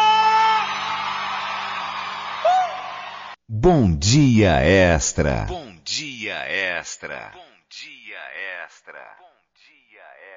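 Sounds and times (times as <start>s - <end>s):
high whoop: 0.0s - 3.3s
group of people shouting and cheering in response: 0.0s - 3.4s
speech: 3.6s - 9.2s.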